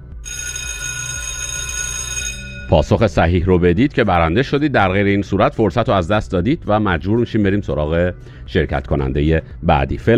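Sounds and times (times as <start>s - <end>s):
electric school bell ringing: 0.2s - 2.9s
speech: 2.7s - 10.1s.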